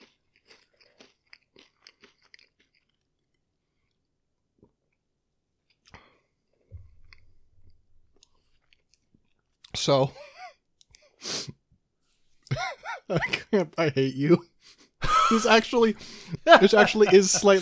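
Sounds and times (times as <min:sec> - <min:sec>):
potato chips crunching: 0:00.0 - 0:03.4
low chewing: 0:00.0 - 0:05.0, 0:05.6 - 0:09.8
speech: 0:09.8 - 0:10.3, 0:13.1 - 0:14.5, 0:15.3 - 0:17.6
laughter: 0:12.5 - 0:13.7, 0:15.0 - 0:17.6.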